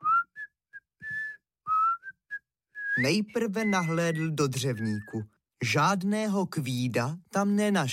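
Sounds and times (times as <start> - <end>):
person whistling a short bouncy tune: 0.0 - 5.4
speech: 3.0 - 7.9.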